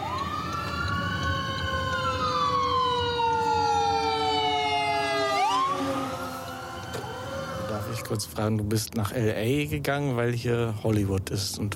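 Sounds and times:
emergency vehicle siren approaching from behind: 0.0s - 8.5s
steady low rumble of road traffic on US West Coast road: 0.0s - 11.7s
speech: 8.1s - 11.7s.

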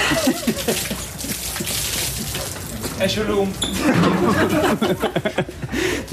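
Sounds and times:
people laughing: 0.0s - 1.5s, 3.8s - 6.1s
beer sloshed out of cups splashing over a player: 0.0s - 5.0s.

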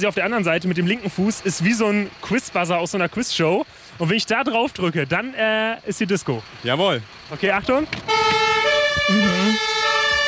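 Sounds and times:
speech: 0.0s - 8.4s, 9.0s - 9.7s
rumble: 0.0s - 10.2s
fire truck siren: 7.9s - 10.2s.

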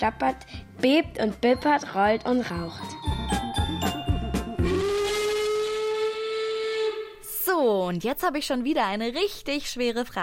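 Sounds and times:
speech: 0.0s - 3.4s, 7.6s - 10.2s
steam train whistle: 4.6s - 7.3s.

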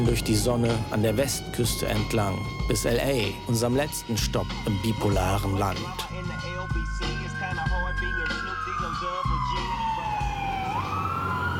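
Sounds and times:
speech: 0.0s - 6.7s
emergency vehicle siren wailing on a road along the US West Coast: 0.0s - 11.5s
road traffic rumble: 0.0s - 11.5s.

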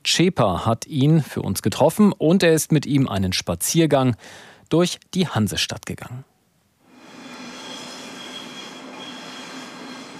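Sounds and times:
speech: 0.1s - 6.3s
train rolling over rails in a station: 7.2s - 10.1s.

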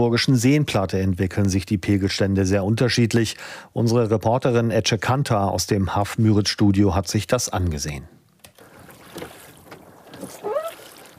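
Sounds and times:
speech: 0.0s - 8.2s
rowing boat oar strokes through weedy water: 8.5s - 11.1s.

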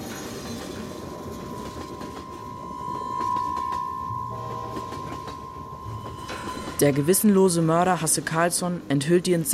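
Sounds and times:
train rolling on tracks with clickety-clack: 0.0s - 9.5s
sustained metallic tone: 1.0s - 8.5s
speech: 6.8s - 9.5s.

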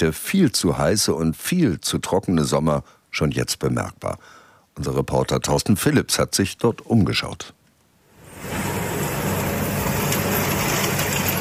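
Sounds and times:
speech: 0.0s - 7.6s
tractor engine rumbling: 8.4s - 11.4s.

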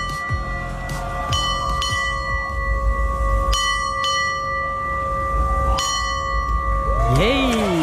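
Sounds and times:
ship's bell tolling the time in the traditional seafaring way: 0.0s - 7.2s.

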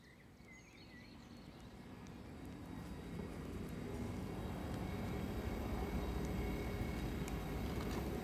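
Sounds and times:
heavy rail traffic rumbling in a large railway station: 1.7s - 8.2s.

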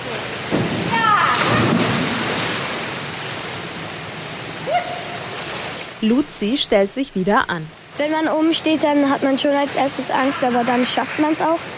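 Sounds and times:
girl jumping feet-first from a springboard into a pool: 0.5s - 2.9s
speech: 6.0s - 11.7s.

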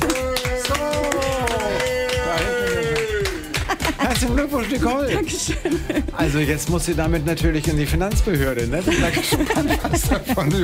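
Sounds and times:
crowd clapping and cheering outside studio glass booth: 0.0s - 6.1s
laughter: 1.4s - 6.6s, 8.8s - 10.6s
speech: 4.2s - 10.6s.

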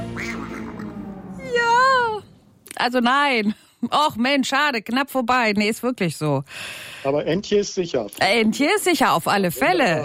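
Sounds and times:
duck quacking: 0.1s - 0.9s
speech: 2.8s - 10.0s.

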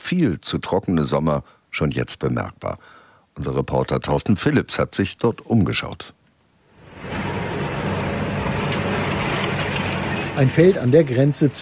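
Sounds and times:
speech: 0.1s - 6.2s, 10.4s - 11.5s
tractor engine rumbling while pulling a large rake through grass: 6.9s - 11.5s.

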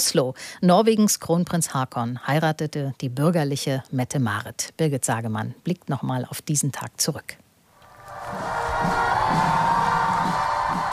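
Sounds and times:
speech: 0.1s - 7.4s
large outdoor crowd cheering along a street in Oslo Norway: 7.8s - 10.9s.

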